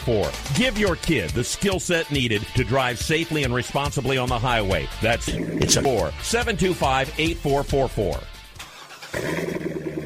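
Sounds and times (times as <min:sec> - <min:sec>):
speech: 0:00.0 - 0:08.3, 0:09.1 - 0:09.5
Corvette sports car engine revving: 0:09.1 - 0:10.0.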